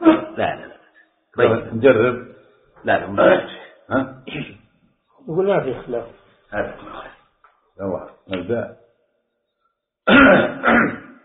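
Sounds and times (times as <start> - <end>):
man clearing his throat: 0.0 - 0.7, 3.9 - 4.6, 10.1 - 11.2
speech: 1.4 - 4.6, 5.2 - 7.2, 7.8 - 8.8, 10.1 - 10.9
man coughing: 10.1 - 11.1.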